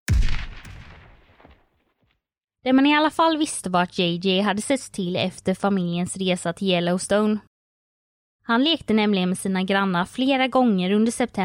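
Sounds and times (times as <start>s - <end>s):
gunshot with heavy low-end boom: 0.0s - 1.8s
long echo of gunshot: 0.1s - 1.7s
speech: 2.6s - 7.5s, 8.5s - 11.4s.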